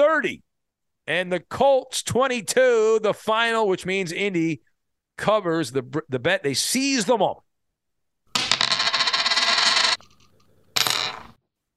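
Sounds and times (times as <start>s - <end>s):
speech: 0.2s - 0.4s, 1.1s - 7.4s
flipped penny spinning and rattling on a hard surface: 8.3s - 11.4s.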